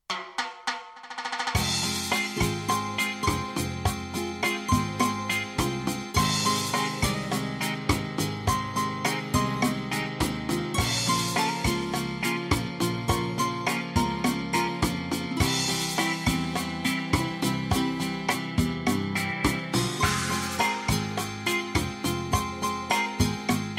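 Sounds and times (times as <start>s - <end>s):
Latin ballad rhythm: 1.5s - 23.7s.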